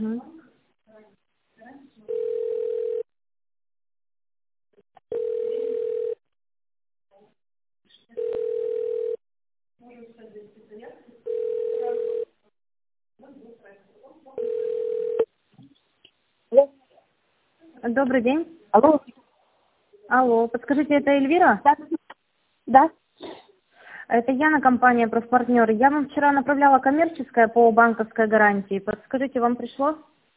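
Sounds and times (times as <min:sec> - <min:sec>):
telephone ringing tone while an office call is transferred: 0:02.1 - 0:03.1, 0:05.1 - 0:06.2, 0:08.2 - 0:09.2, 0:11.2 - 0:12.4, 0:14.4 - 0:15.3
speech: 0:17.9 - 0:19.2, 0:20.1 - 0:22.0, 0:22.7 - 0:23.0, 0:24.1 - 0:30.1.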